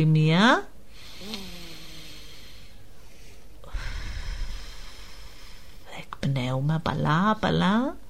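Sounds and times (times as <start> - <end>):
speech: 0.0 - 0.7, 6.2 - 8.0
deep slow inhalation during a guided breathing exercise: 0.9 - 5.9.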